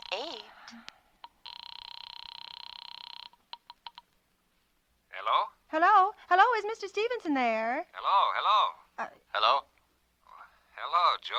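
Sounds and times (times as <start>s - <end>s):
speech: 0.7s - 1.0s, 5.7s - 9.6s
telephone line ringing at an office: 1.3s - 4.0s.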